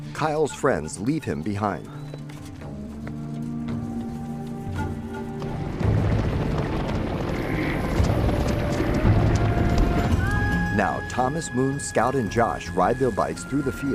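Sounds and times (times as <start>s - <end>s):
speech: 0.2s - 2.0s, 10.8s - 13.9s
herd of animals stampeding through a field: 0.3s - 11.2s.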